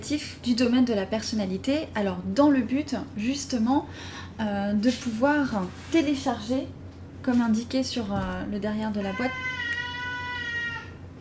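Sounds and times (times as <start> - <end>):
speech: 0.0 - 9.6
cat meowing: 9.0 - 11.0.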